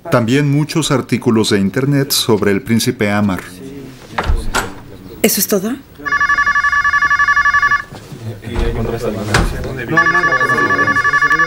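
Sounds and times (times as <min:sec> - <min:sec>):
speech: 0:00.1 - 0:03.6, 0:05.2 - 0:05.9, 0:08.8 - 0:10.7
voicemail greeting: 0:06.0 - 0:07.9, 0:09.9 - 0:11.4
residential telephone ringing in rapid buzzing bursts: 0:06.0 - 0:08.0, 0:09.9 - 0:11.4.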